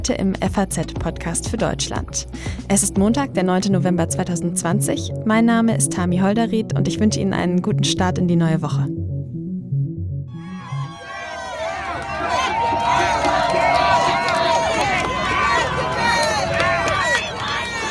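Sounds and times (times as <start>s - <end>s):
speech: 0.0s - 9.0s
crowd celebrating in the streets of Washington D.C. cheering and shouting: 10.4s - 17.8s.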